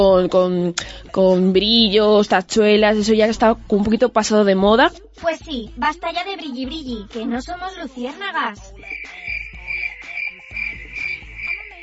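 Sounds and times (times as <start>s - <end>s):
speech: 0.0s - 9.0s
crickets chirping: 8.8s - 11.8s.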